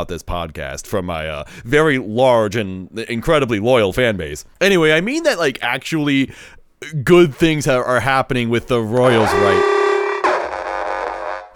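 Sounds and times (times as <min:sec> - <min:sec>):
speech: 0:00.0 - 0:09.8
electronic alarm blaring: 0:09.2 - 0:11.5.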